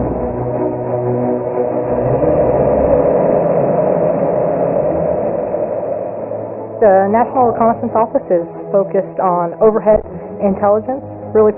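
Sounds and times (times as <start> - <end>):
rocket launch vehicle lifting off with deep roaring rumble: 0.6 - 7.5
speech: 6.8 - 11.5.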